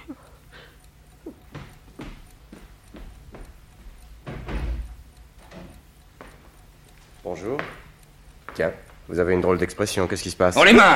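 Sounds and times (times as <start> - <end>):
dull knocks on a door: 4.2 - 4.9
speech: 7.3 - 7.8, 8.6 - 10.9.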